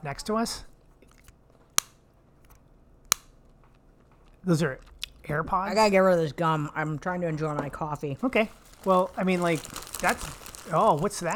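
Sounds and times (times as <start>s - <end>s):
speech: 0.0s - 0.7s, 4.4s - 11.3s
paper napkins crinkling and rustling: 7.6s - 11.3s.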